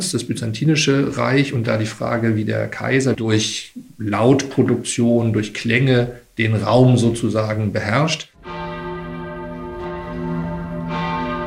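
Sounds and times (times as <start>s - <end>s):
speech: 0.0s - 8.3s
large church bell ringing: 8.4s - 11.4s.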